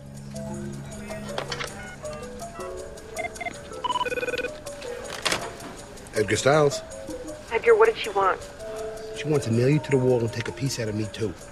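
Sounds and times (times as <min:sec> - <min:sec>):
telephone ringing as a call goes through: 0:03.2 - 0:04.6
speech: 0:06.2 - 0:08.5, 0:09.2 - 0:11.5.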